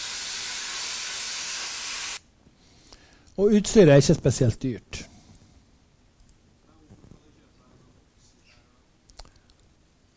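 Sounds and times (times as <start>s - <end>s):
cutting torch slicing a flange from 20 mm steel plate: 0.0s - 2.2s
speech: 3.4s - 5.1s.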